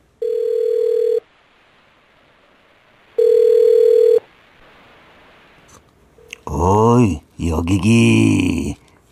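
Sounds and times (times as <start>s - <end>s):
buzzing telephone ringing tone: 0.2s - 1.3s, 3.2s - 4.3s
speech: 7.0s - 8.8s.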